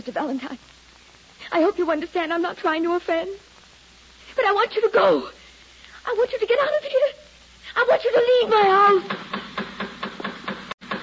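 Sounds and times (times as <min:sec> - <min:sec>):
speech: 0:00.0 - 0:00.8, 0:01.5 - 0:03.5, 0:04.4 - 0:05.4, 0:06.0 - 0:07.2, 0:07.8 - 0:09.5
low hum: 0:00.0 - 0:11.0
knocking on a house door: 0:09.0 - 0:11.0.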